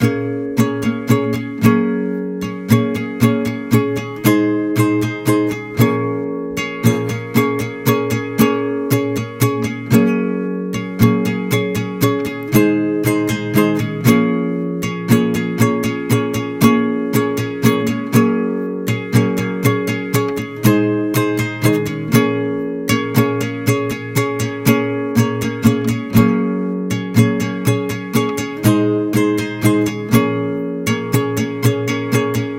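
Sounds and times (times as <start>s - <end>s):
slower chorus rhythm: 0.0s - 32.5s.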